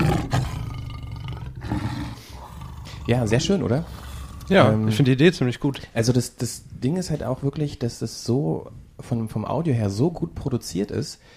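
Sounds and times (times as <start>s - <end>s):
lion roaring: 0.0s - 5.2s
speech: 3.1s - 11.3s.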